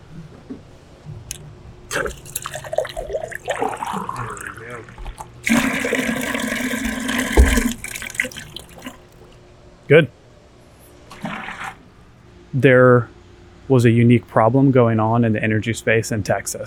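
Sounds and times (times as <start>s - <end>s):
water pouring from a dispenser into a glass: 1.9s - 9.0s
speech: 2.0s - 2.3s, 9.9s - 10.2s, 12.6s - 13.1s, 13.7s - 16.6s.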